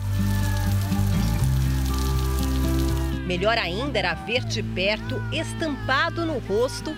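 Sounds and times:
steady rain pattering on a surface: 0:00.0 - 0:03.2
speech: 0:03.3 - 0:06.9.

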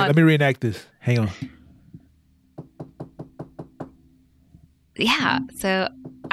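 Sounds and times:
speech: 0:00.0 - 0:01.6, 0:05.0 - 0:06.3
faint taps: 0:01.3 - 0:04.7
sharp knocks on a front door: 0:01.4 - 0:04.2, 0:05.5 - 0:06.3.

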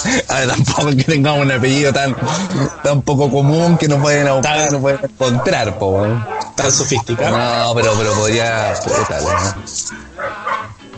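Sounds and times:
laughter: 0:00.0 - 0:10.6
speech: 0:00.1 - 0:10.5
several dogs barking and yipping in chorus: 0:01.4 - 0:10.8.

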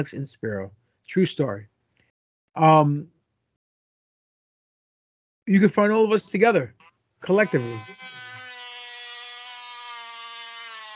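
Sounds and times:
speech: 0:00.0 - 0:01.7, 0:02.6 - 0:03.2, 0:05.5 - 0:08.0
power drill whirring: 0:07.2 - 0:10.9.

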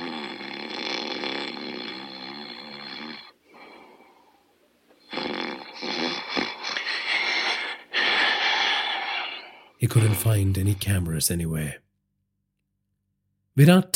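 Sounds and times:
old woman snoring while asleep: 0:00.0 - 0:11.2
speech: 0:09.8 - 0:11.8, 0:13.6 - 0:13.9.

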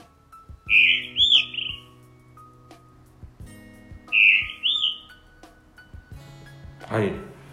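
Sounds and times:
blue rock thrush singing above a church roof: 0:00.6 - 0:02.1, 0:04.1 - 0:05.4
speech: 0:06.9 - 0:07.3.

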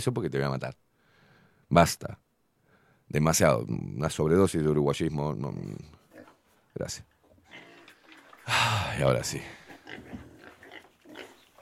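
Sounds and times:
speech: 0:00.0 - 0:00.8, 0:01.7 - 0:02.2, 0:03.1 - 0:06.0, 0:06.8 - 0:07.6, 0:08.5 - 0:10.2
pigs grunting, squealing and snorting: 0:06.0 - 0:06.4, 0:07.4 - 0:11.6.

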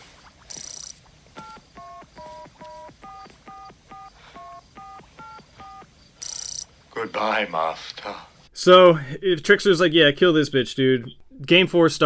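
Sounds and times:
brief high telephone beep: 0:00.5 - 0:06.7
speech: 0:07.0 - 0:12.0.

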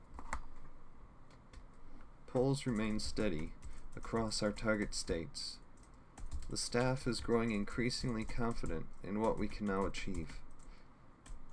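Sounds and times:
faint steady room hum: 0:00.0 - 0:11.5
speech: 0:02.3 - 0:05.6, 0:06.5 - 0:10.4
typing on a computer keyboard: 0:02.6 - 0:05.2, 0:05.8 - 0:11.5.

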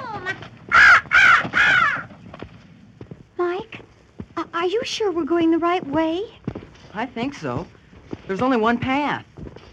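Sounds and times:
raven calling with harsh croaking caws: 0:00.2 - 0:02.5
speech: 0:04.7 - 0:09.3.

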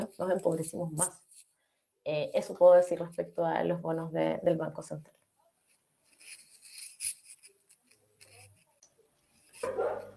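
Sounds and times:
speech: 0:00.1 - 0:05.2
dogs barking outside: 0:09.6 - 0:10.1.

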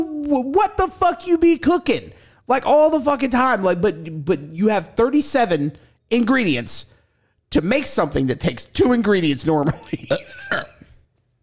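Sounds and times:
speech: 0:00.0 - 0:06.9, 0:07.5 - 0:10.6
person burping: 0:09.8 - 0:11.0
throaty gulp: 0:10.1 - 0:10.9.

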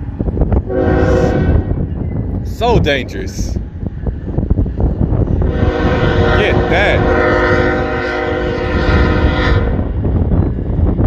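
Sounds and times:
heavy rumble of a passing train: 0:00.0 - 0:11.0
train horn blaring at a crossing: 0:00.6 - 0:01.8, 0:05.4 - 0:10.0
speech: 0:02.6 - 0:03.6, 0:06.4 - 0:07.6.

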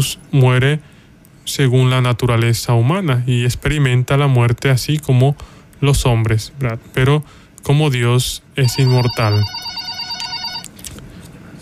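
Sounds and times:
speech: 0:00.0 - 0:00.9, 0:01.5 - 0:09.7
telephone ringing with electronic tone for incoming call: 0:08.6 - 0:10.7.

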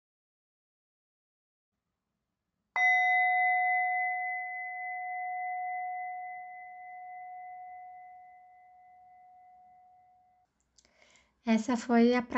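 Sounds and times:
meditation bell ringing: 0:02.8 - 0:10.4
speech: 0:11.4 - 0:12.3.

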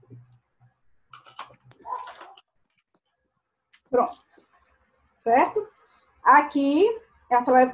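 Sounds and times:
pen being picked up and handled: 0:01.1 - 0:02.4
speech: 0:03.9 - 0:04.4, 0:05.2 - 0:05.7, 0:06.3 - 0:07.7.

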